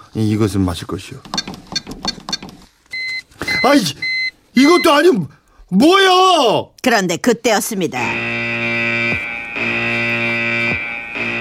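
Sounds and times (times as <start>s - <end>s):
speech: 0.2s - 1.4s, 3.6s - 8.3s
digital door lock alarm buzzing after wrong passcodes: 8.1s - 11.3s.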